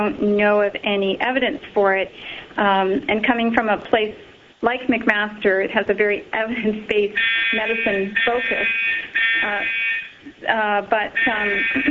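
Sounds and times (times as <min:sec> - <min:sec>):
speech: 0:00.0 - 0:11.8
shrill steady electronic fire alarm: 0:07.2 - 0:10.2, 0:11.2 - 0:11.8.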